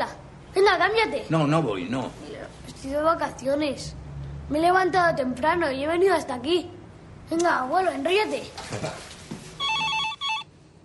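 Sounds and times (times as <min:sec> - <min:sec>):
speech: 0:00.8 - 0:09.1
telephone ringing: 0:09.6 - 0:10.6.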